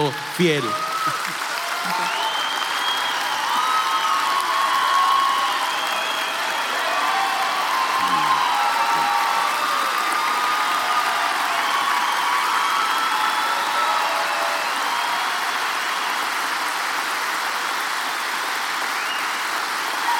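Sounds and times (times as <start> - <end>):
scattered shouts and whoops from audience: 0.0 - 16.9, 18.9 - 20.1
large audience clapping: 0.0 - 20.1
speech: 0.1 - 0.8.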